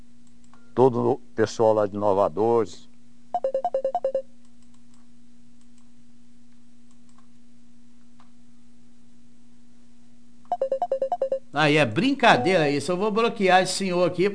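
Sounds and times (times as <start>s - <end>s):
speech: 0.8s - 2.9s, 11.6s - 14.3s
incoming call ringtone on a phone: 3.4s - 4.3s, 10.5s - 11.4s.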